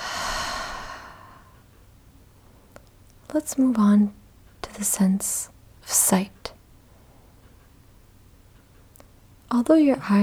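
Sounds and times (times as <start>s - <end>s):
deep breath in and out during a guided practice: 0.0s - 1.6s
speech: 3.3s - 6.4s, 9.5s - 10.2s.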